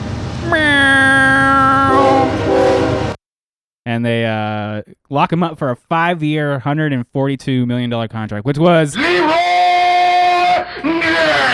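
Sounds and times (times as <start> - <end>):
train rushing past: 0.0 - 3.2
train horn blaring: 1.8 - 3.2
speech: 4.0 - 9.5, 10.8 - 11.5.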